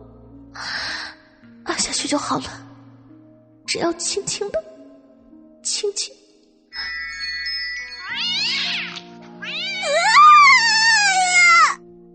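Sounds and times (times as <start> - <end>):
speech: 1.9 - 2.6, 3.7 - 4.7, 5.6 - 6.2
cat meowing loudly with a wavering yowl: 8.0 - 11.8.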